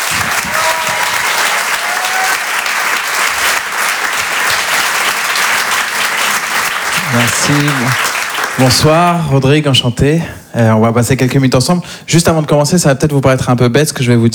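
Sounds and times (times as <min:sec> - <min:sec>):
audience applauding a comedian coming on stage at a comedy show in a theatre: 0:00.0 - 0:09.6
speech: 0:07.2 - 0:14.3.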